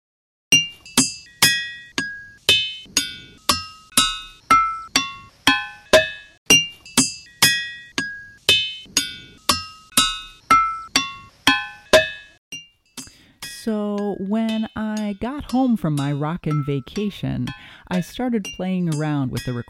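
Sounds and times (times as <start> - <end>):
ringing rocks struck with a hammer: 0.6 - 13.6
speech: 13.7 - 19.6.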